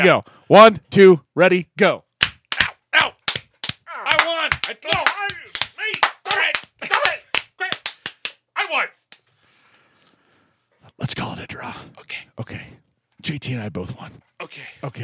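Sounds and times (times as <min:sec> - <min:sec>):
speech: 0:00.0 - 0:02.0, 0:11.0 - 0:15.0
hands slapping in a playful slap fight: 0:02.2 - 0:08.4
playful grunts, yelps and strained vocal cries: 0:02.5 - 0:08.0.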